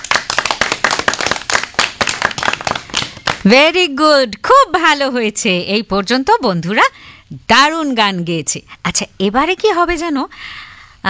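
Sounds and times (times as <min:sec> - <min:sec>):
loud clapping from a group cheering a children's singing competition: 0:00.0 - 0:03.5
speech: 0:03.4 - 0:11.0.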